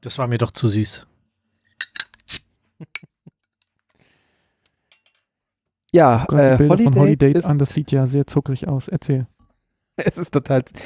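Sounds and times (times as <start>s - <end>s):
speech: 0.0s - 1.1s, 5.9s - 9.3s, 10.0s - 10.8s
light metallic clicks and clinks of a beer bottle: 1.8s - 2.3s
beer bottle cap coming off with a hiss: 1.9s - 2.4s.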